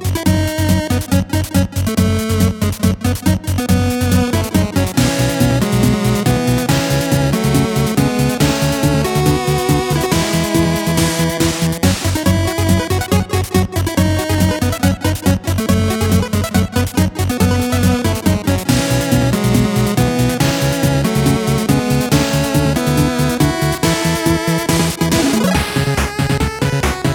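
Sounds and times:
8bit space shooter game sounds: 0.2 - 27.1.

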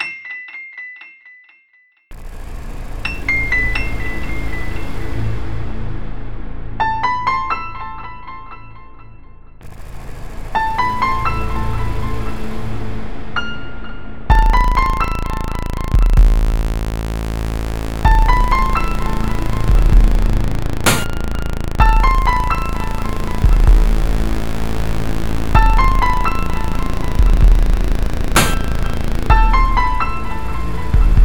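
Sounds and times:
horror music loop: 2.1 - 6.4, 9.7 - 13.3, 14.3 - 31.2.

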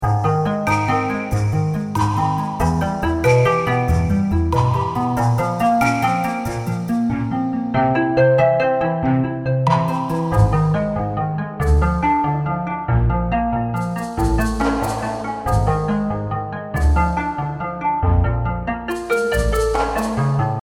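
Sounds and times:
mysterious cave music with orcs theme: 0.0 - 20.6.

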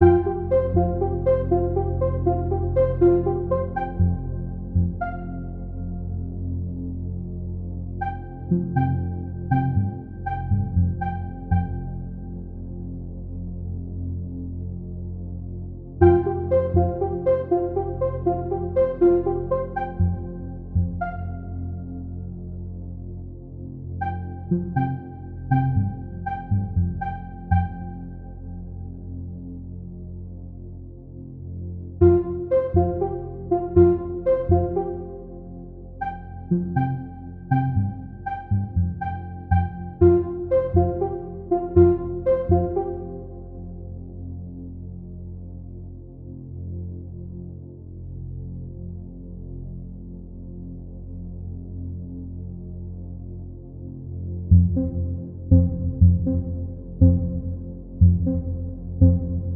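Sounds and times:
music: 0.0 - 59.5.

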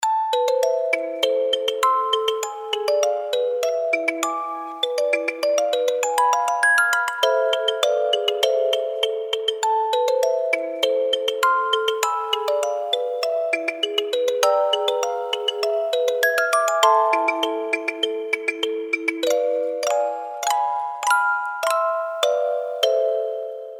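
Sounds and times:
music box intro melody: 0.0 - 23.7.

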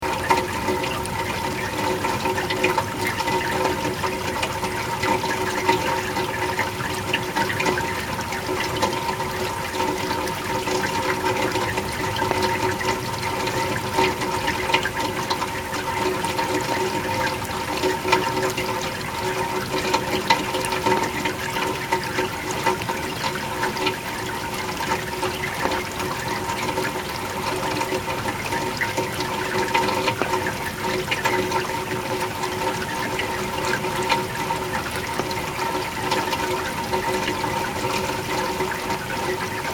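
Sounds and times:
rain gutter water: 0.0 - 39.7.

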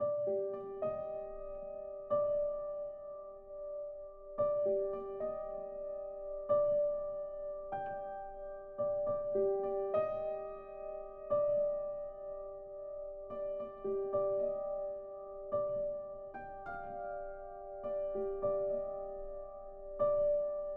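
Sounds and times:
simple horror piano music theme: 0.0 - 20.7.

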